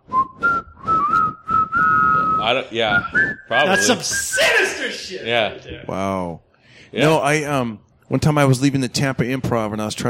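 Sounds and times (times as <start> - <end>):
person whistling a bouncy melody: 0.0 - 4.8
speech: 2.4 - 10.0.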